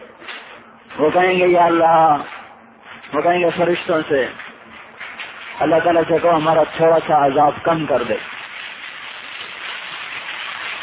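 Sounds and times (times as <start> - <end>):
speech: 1.0 - 2.4, 3.1 - 4.4, 5.6 - 8.3
rain falling: 5.0 - 10.8.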